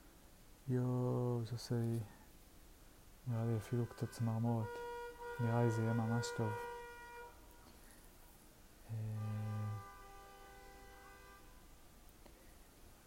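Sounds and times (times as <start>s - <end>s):
steady hum: 0.0s - 13.0s
speech: 0.7s - 2.2s, 3.2s - 6.7s
car horn honking outside: 3.3s - 7.7s, 8.9s - 11.8s.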